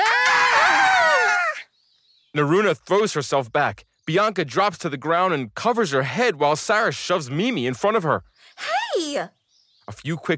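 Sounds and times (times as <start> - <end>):
several girls screaming in surprise: 0.0 - 1.6
speech: 2.3 - 10.3.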